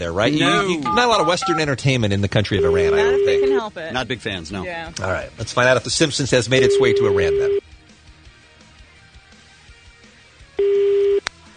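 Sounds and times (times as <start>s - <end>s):
speech: 0.0s - 7.6s
buzzing international telephone ringing tone: 0.9s - 1.6s, 2.6s - 3.6s, 6.6s - 7.6s, 10.6s - 11.2s.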